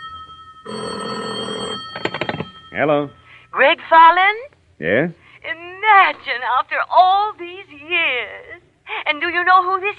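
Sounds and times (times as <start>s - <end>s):
telephone bell ringing: 0.0s - 3.3s
speech: 2.8s - 9.9s.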